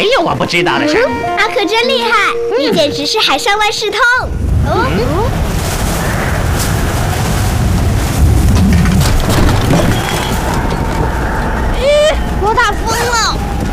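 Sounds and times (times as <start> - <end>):
speech: 0.1 - 5.5
strong wind roaring on an island: 4.2 - 13.7.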